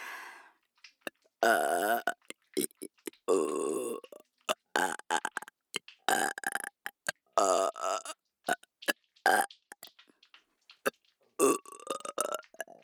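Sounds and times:
loud throaty burps: 1.4s - 8.6s, 9.3s - 9.5s, 11.4s - 12.8s.

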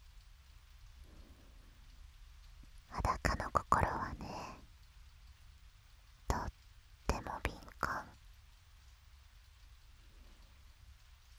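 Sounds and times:
steady rain falling: 0.0s - 11.3s.

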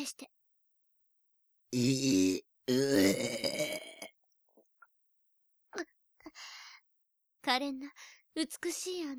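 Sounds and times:
speech: 0.0s - 0.4s, 1.7s - 3.8s, 7.5s - 9.1s
loud drawn-out burps with a deep croaking tone: 1.7s - 4.2s.

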